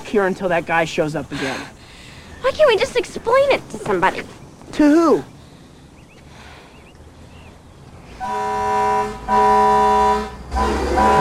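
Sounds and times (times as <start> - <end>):
speech: 0.1 - 1.8, 2.4 - 5.3
old-fashioned fire engine horn blasts: 8.2 - 11.1.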